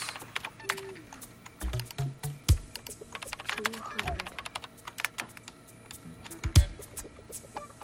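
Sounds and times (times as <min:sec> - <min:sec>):
boy typing on a computer keyboard: 0:00.0 - 0:02.0, 0:02.7 - 0:05.6
person speaking: 0:03.4 - 0:04.6.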